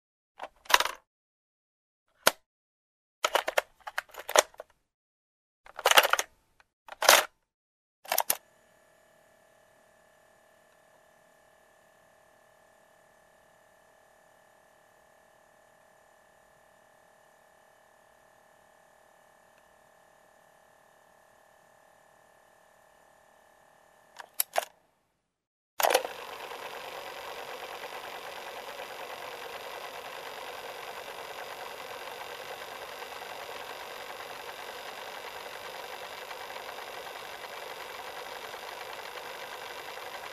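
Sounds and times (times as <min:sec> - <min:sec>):
cassette tape recorder: 0:00.4 - 0:01.0, 0:03.2 - 0:04.7, 0:05.7 - 0:06.3, 0:08.1 - 0:08.5, 0:24.1 - 0:24.8, 0:25.8 - 0:40.3.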